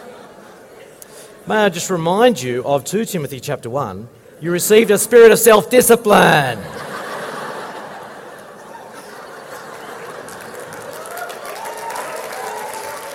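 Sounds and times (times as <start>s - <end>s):
speech: 1.5s - 6.9s
scattered laughter and chuckles: 6.6s - 10.9s
crowd clapping: 9.0s - 13.1s.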